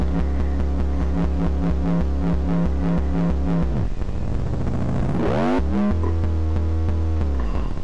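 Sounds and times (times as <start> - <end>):
synthesizer imitating a motorcycle engine: 0.0 - 7.8.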